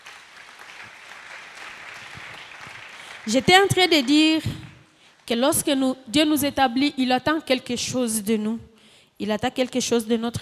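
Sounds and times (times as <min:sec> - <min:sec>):
church congregation clapping after a scripture reading: 0:00.0 - 0:05.5
speech: 0:03.3 - 0:04.6, 0:05.3 - 0:10.4.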